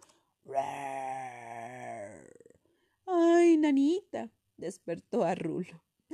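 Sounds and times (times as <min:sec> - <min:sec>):
low human growl with creaky finish: 0:00.5 - 0:02.6
speech: 0:03.7 - 0:05.9.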